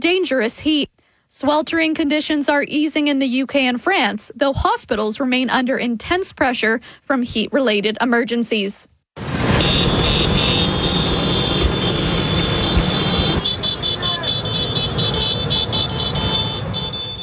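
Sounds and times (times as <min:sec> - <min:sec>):
speech: 0:00.0 - 0:08.9
dense traffic noise in city streets: 0:09.2 - 0:17.2
many Vespa motor scooter engines droning through city streets: 0:09.2 - 0:17.2.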